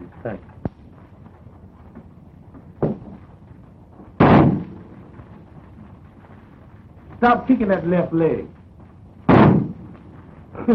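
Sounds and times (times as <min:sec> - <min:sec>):
speech: 0:00.2 - 0:00.5, 0:07.2 - 0:08.6
gunshot from a police pistol: 0:02.8 - 0:03.2, 0:04.2 - 0:04.9, 0:09.3 - 0:09.9.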